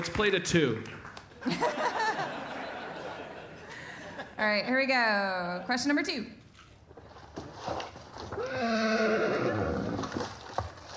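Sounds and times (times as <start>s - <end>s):
speech: 0.0s - 1.9s, 4.4s - 6.4s
laughter: 1.4s - 4.8s
donkey giving a long harsh call: 8.4s - 10.2s.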